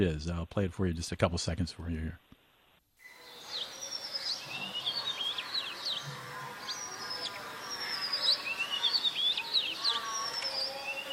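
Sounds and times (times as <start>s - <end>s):
speech: 0.0s - 2.3s
many birds chirping and trilling: 3.0s - 11.1s
faint indistinct voices murmuring far: 3.2s - 11.1s.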